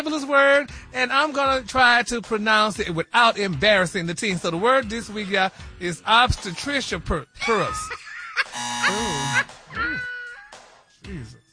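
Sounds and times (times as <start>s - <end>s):
speech: 0.0s - 8.0s
harsh flat game show wrong-answer buzzer: 8.5s - 9.6s.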